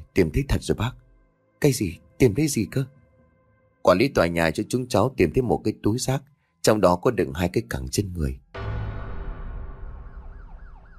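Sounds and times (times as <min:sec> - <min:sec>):
speech: 0:00.2 - 0:01.0, 0:01.6 - 0:03.0, 0:03.8 - 0:08.4
loud low rumble: 0:08.6 - 0:10.9
police car siren wailing: 0:09.8 - 0:10.9.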